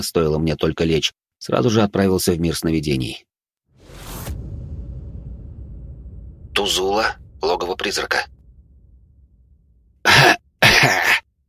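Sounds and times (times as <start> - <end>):
speech: 0.0 - 3.3, 6.6 - 8.3, 10.0 - 11.2
man coughing loudly: 10.1 - 11.2.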